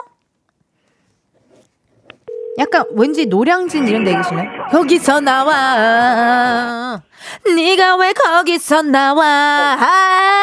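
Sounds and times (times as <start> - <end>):
steady telephone tone: 2.3 - 4.9
speech: 2.6 - 10.4.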